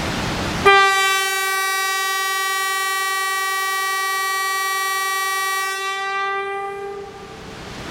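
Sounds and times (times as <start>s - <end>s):
tram: 0.0s - 7.8s
train horns: 0.6s - 7.6s.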